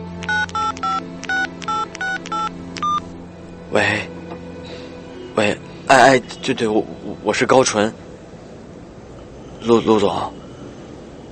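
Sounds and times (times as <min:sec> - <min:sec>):
telephone touch-tone dialling beeps: 0:00.2 - 0:03.0
speech: 0:03.7 - 0:04.1, 0:05.4 - 0:08.1, 0:09.6 - 0:10.4.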